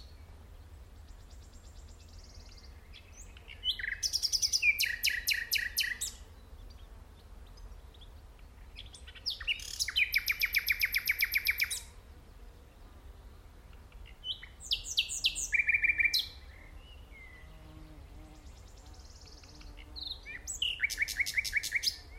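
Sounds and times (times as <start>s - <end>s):
common nightingale Luscinia megarhynchos singing: 1.1s - 6.2s, 7.5s - 11.9s, 13.9s - 17.5s, 18.4s - 22.1s.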